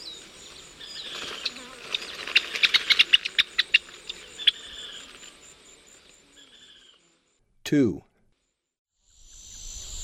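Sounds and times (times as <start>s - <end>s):
steady high insect drone in Ecuador: 0.0s - 7.4s, 9.0s - 10.0s
gray-breasted crake clicking calls in Ecuador: 0.8s - 5.3s
speech: 7.7s - 8.1s.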